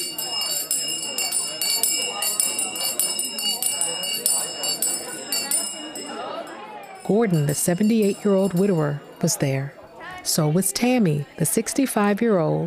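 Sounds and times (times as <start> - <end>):
bright high bell ringing in quick strikes: 0.0 - 9.9
crowded room of people chattering: 0.0 - 12.6
speech: 7.1 - 12.6.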